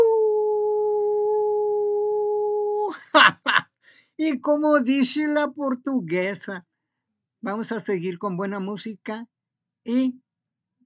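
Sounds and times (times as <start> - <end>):
long howl with rough yelping bursts: 0.0 - 3.0
speech: 4.2 - 6.7, 7.4 - 10.2.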